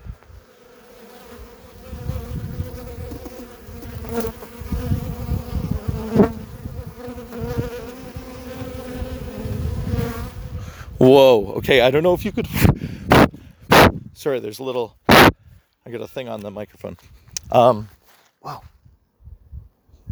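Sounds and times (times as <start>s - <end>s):
honeybees buzzing near a hive feeder: 0.2s - 10.5s
speech: 11.0s - 12.8s, 14.2s - 15.0s, 15.9s - 18.7s.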